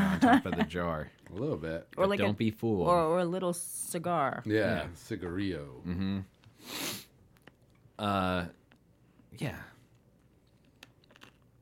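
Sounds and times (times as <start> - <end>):
speech: 0.2 - 7.0, 8.0 - 8.6, 9.4 - 9.7
crunchy candy being chewed: 10.4 - 11.5.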